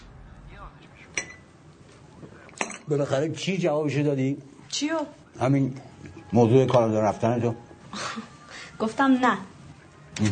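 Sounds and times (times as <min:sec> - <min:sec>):
china cup tapped against a dish: 0:01.2 - 0:01.5
speech: 0:02.9 - 0:08.0, 0:08.8 - 0:09.5.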